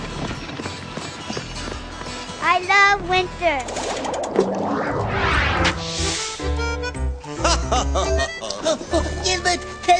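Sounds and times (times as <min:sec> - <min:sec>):
horse hooves trotting on a sleigh ride: 0:00.0 - 0:03.6
speech: 0:02.4 - 0:05.0
rushing noise: 0:02.9 - 0:06.7
laughter: 0:07.4 - 0:09.8.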